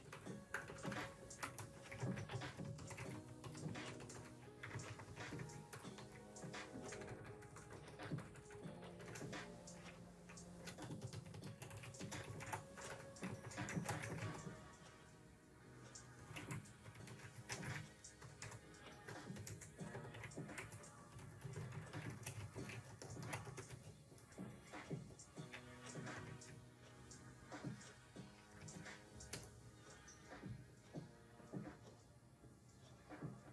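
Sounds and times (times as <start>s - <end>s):
light clicking from a keyboard: 0.0s - 14.6s, 16.0s - 26.6s
mellow lofi instrumental music: 0.0s - 33.5s.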